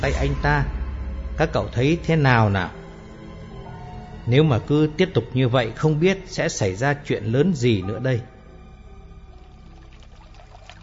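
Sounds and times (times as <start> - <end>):
speech: 0.0 - 0.8, 1.4 - 2.8, 4.3 - 8.3
river water scooped by hand to wash the face, splashing and trickling: 9.2 - 10.8.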